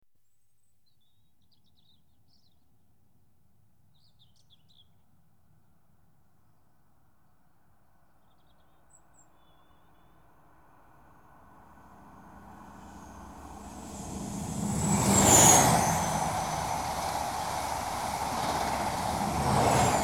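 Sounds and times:
Inter City 125 trains passing: 11.5s - 20.0s.

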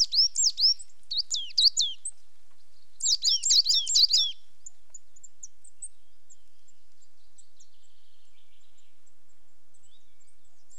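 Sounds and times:
Coal tits calling while displaying on territorial boundary: 0.0s - 2.2s, 2.8s - 5.9s.

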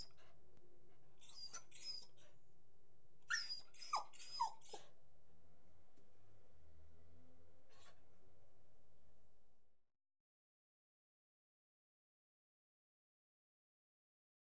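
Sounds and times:
beagle yelping and whining barks: 1.2s - 2.3s, 3.3s - 4.9s.

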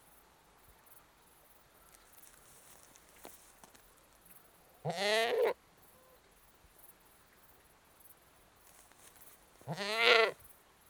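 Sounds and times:
annoyed British goat bleating: 9.7s - 10.4s.

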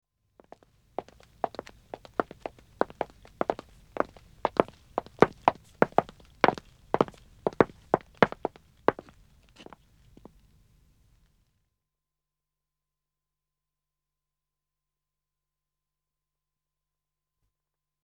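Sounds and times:
one man's footsteps walking on dead acoustic wood: 1.0s - 9.8s.

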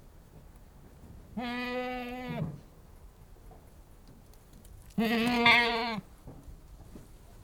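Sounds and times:
speech: 1.4s - 1.7s, 5.0s - 5.3s
Anglo-Nubian goat bleating: 1.4s - 2.4s, 5.0s - 6.1s.

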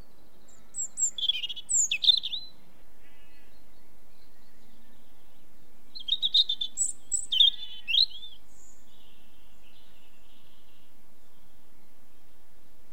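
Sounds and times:
British European robin singing: 0.0s - 12.9s.

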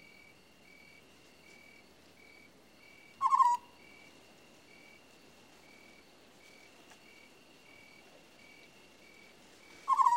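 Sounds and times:
faint steady whine: 0.0s - 10.1s
African scops owl purring trill: 3.2s - 4.0s, 9.7s - 10.1s.

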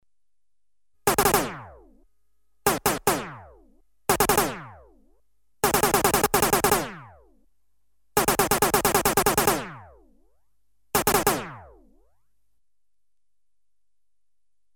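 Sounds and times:
electronically generated variable velocity gun bursts: 1.1s - 1.6s, 2.7s - 3.4s, 4.1s - 4.6s, 5.6s - 7.0s, 8.2s - 9.7s, 11.0s - 11.5s.

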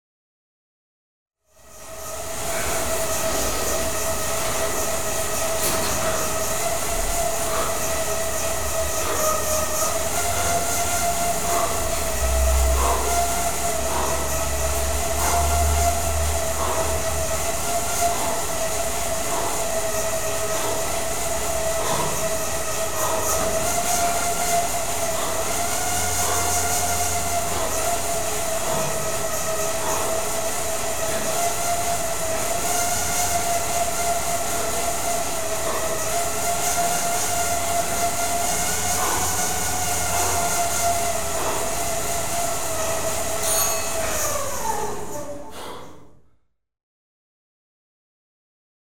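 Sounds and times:
hydraulic exercise bike: 1.6s - 46.1s
exercise bike time's up bell: 43.4s - 44.1s.

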